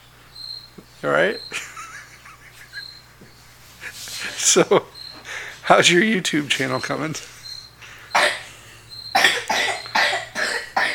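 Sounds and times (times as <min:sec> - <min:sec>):
speech: 0:01.0 - 0:01.6, 0:04.4 - 0:04.9, 0:05.7 - 0:07.3
laughter: 0:01.5 - 0:05.5
person coughing: 0:08.2 - 0:08.6, 0:09.2 - 0:10.9.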